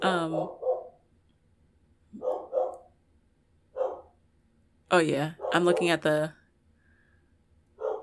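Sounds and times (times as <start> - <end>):
speech: 0.0 - 0.6, 4.9 - 6.4
dog barking: 0.3 - 1.0, 2.2 - 2.9, 3.8 - 4.1, 5.4 - 6.0, 7.8 - 8.0.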